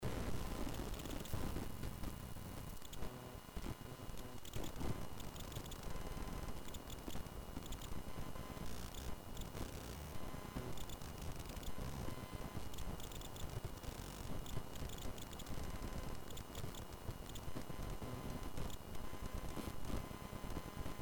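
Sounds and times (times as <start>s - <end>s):
noise from a DMX 6fire audio interface: 0.0s - 21.0s.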